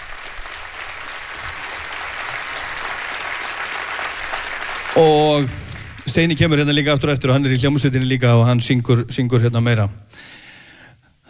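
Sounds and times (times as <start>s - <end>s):
audience applause at a live music performance: 0.0s - 6.9s
speech: 5.0s - 10.4s.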